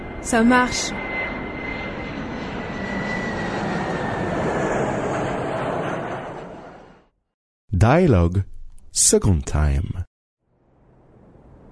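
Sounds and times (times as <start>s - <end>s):
airplane flying past with engine drone: 0.0s - 7.1s, 10.5s - 11.7s
speech: 0.2s - 1.0s, 7.8s - 10.1s.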